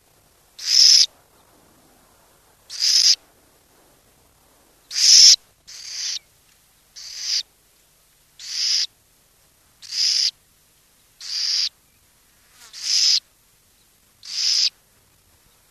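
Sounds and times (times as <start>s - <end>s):
burrowing owl harsh breathy screeches: 0.6s - 1.1s, 2.7s - 3.2s, 4.9s - 6.2s, 7.0s - 7.4s, 8.4s - 8.9s, 9.8s - 10.3s, 11.2s - 11.7s, 12.7s - 13.2s, 14.2s - 14.7s.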